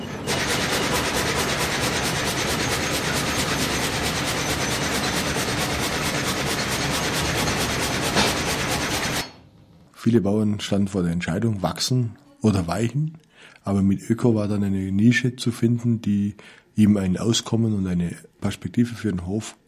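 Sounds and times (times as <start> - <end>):
sawmill saw cutting through a log: 0.0 - 9.3
blower running in a sawmill: 0.0 - 9.4
speech: 10.0 - 19.6.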